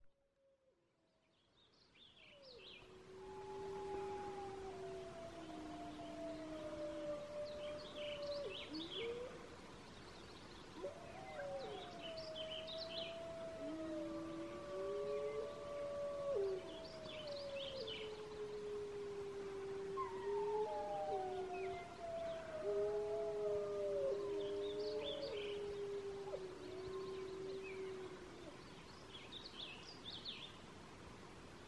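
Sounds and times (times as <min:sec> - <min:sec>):
wolf howls: 0:02.8 - 0:09.4, 0:10.8 - 0:28.6.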